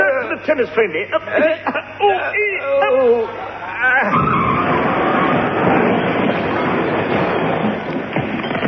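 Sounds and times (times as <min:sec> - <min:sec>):
speech: 0:00.4 - 0:04.4
people straining and grunting: 0:02.0 - 0:05.6
lorry loaded with scrap iron crashing into a deep smelting pit: 0:04.1 - 0:08.3.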